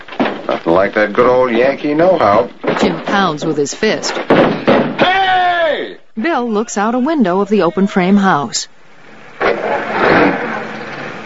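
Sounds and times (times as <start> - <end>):
speech: 0.5 - 5.1, 6.2 - 8.8
workman's car driving away: 9.4 - 11.2.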